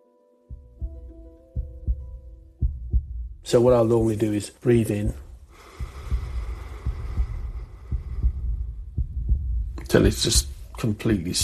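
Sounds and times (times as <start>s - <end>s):
heartbeat thumping: 0.5s - 11.4s
speech: 3.4s - 5.2s, 9.9s - 11.4s
soft breathy hiss: 3.5s - 11.4s.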